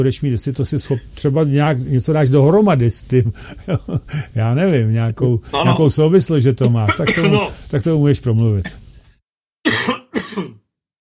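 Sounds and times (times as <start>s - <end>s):
speech: 0.0s - 8.8s
harsh coughs: 6.9s - 7.5s, 9.6s - 10.7s.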